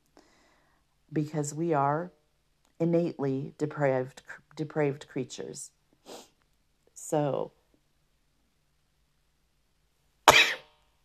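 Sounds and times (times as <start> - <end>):
speech: 1.1 - 2.2, 2.8 - 6.3, 7.1 - 7.6
person with allergies sneezing: 10.3 - 10.7.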